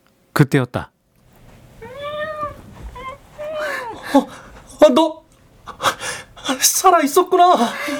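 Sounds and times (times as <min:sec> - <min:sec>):
speech: 0:00.4 - 0:00.9, 0:04.1 - 0:05.2, 0:05.8 - 0:07.9
cat meowing: 0:01.3 - 0:06.6.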